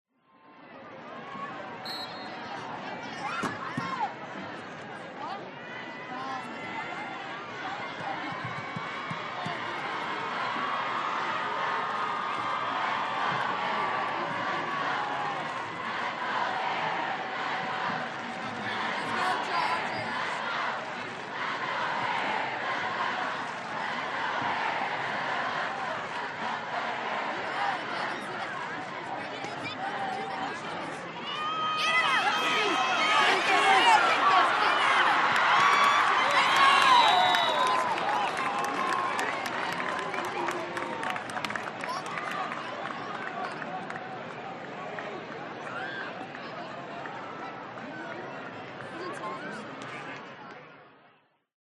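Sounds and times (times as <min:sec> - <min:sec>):
crowd cheering: 0:01.0 - 0:50.9
American football crowd chanting on opposite side of stadium: 0:08.0 - 0:42.0.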